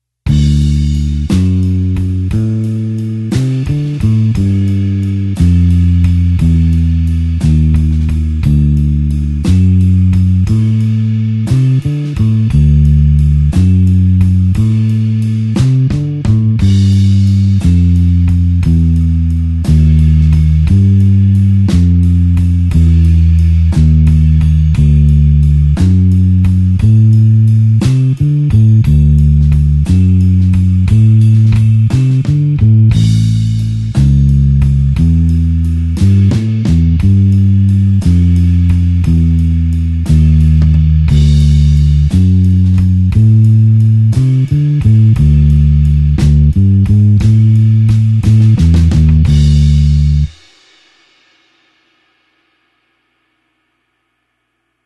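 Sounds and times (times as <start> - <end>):
slow blues bassline in D: 0.2 - 50.5.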